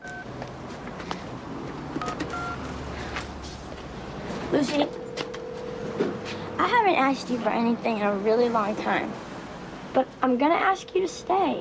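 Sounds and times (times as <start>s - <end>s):
telephone keypad tones as a phone is dialed: 0.0s - 0.3s, 2.0s - 2.6s
speech: 4.5s - 5.0s, 6.9s - 9.2s, 10.0s - 11.5s.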